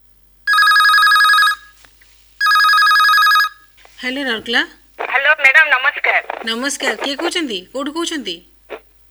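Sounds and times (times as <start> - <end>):
telephone ringing for an incoming call with electronic trilling rings: 0.5 - 1.8, 2.4 - 3.8
speech: 4.0 - 8.5.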